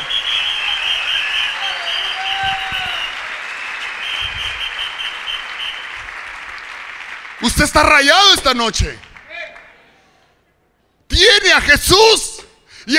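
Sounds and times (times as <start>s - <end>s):
faint cheers: 0.0s - 5.9s
large crowd applauding: 0.0s - 9.9s
speech: 7.6s - 9.1s, 11.2s - 12.9s.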